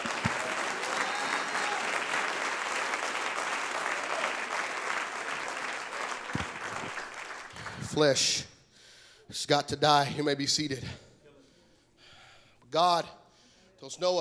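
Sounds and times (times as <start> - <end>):
large audience applause: 0.0 - 8.0
speech: 8.0 - 8.5, 9.3 - 11.0, 12.7 - 13.2, 13.9 - 14.1.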